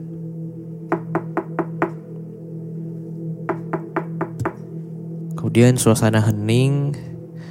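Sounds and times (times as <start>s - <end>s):
low constant hum: 0.0s - 7.4s
knocking on a door: 0.9s - 1.9s, 3.5s - 4.6s
speech: 5.4s - 7.1s.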